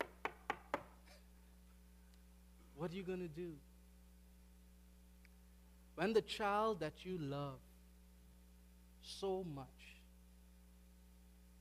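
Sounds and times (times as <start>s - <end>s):
knocking on a door: 0.0s - 0.9s
speech: 2.8s - 3.7s, 6.0s - 7.7s, 9.0s - 10.0s.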